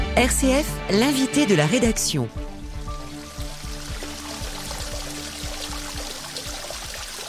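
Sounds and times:
speech: 0:00.2 - 0:02.4
small waterfall in the municipal tropical greenhouses of Châteauroux: 0:03.2 - 0:07.2.

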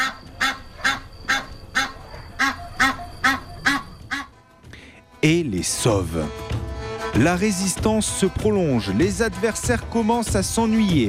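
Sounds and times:
geese honking loudly: 0:00.0 - 0:04.4
speech: 0:05.2 - 0:06.5, 0:07.1 - 0:11.0.

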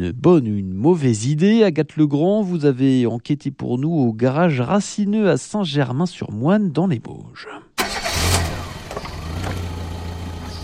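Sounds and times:
speech: 0:00.0 - 0:07.6
car engine idling: 0:07.8 - 0:10.6.

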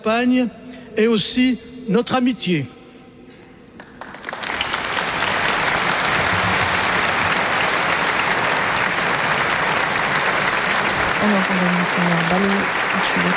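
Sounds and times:
speech: 0:00.0 - 0:02.8
large crowd applauding at a prayer service during a papal visit: 0:03.8 - 0:13.3.

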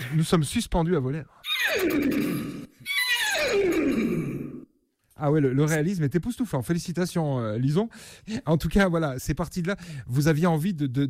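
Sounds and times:
speech: 0:00.1 - 0:02.6, 0:05.2 - 0:11.0
person imitating a horse whinny: 0:01.4 - 0:04.7.

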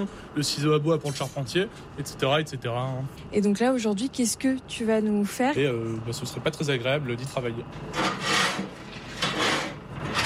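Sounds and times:
speech: 0:00.0 - 0:08.7
charcoal loaded into a blacksmith's coal forge: 0:07.8 - 0:10.2.

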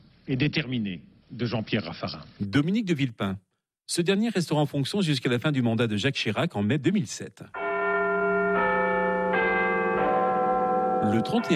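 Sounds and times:
speech: 0:00.3 - 0:07.6, 0:11.0 - 0:11.5
cracked clock bell in London tolling: 0:07.6 - 0:11.5.

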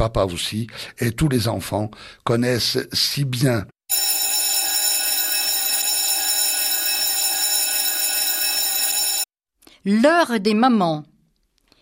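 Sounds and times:
speech: 0:00.0 - 0:03.8, 0:09.8 - 0:11.1
electric school bell ringing: 0:03.9 - 0:09.3.

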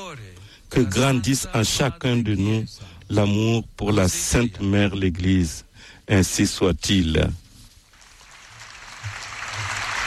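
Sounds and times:
speech: 0:00.1 - 0:07.4
large crowd applauding: 0:08.0 - 0:10.0.

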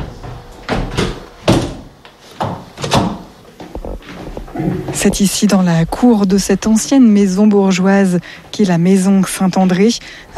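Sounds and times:
several doors swinging shut with wooden thuds: 0:00.0 - 0:05.1
speech: 0:04.6 - 0:10.3.

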